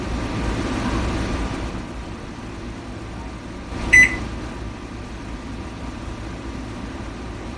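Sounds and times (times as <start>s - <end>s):
steady low hum of noise: 0.0s - 7.5s
short high-pitched electronic beep during barcode scan: 3.9s - 4.2s.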